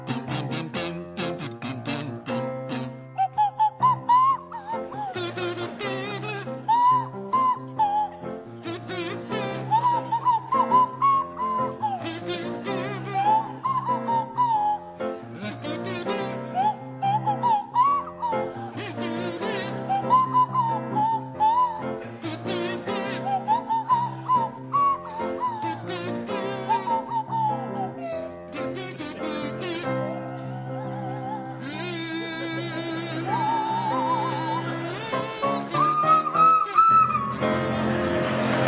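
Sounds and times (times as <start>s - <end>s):
kazoo buzzing a bouncy melody: 0.0s - 38.6s
piano backing: 0.0s - 38.6s
swanee whistle sliding breathy tones: 3.1s - 14.9s, 16.4s - 22.0s, 22.6s - 28.8s, 33.2s - 38.3s.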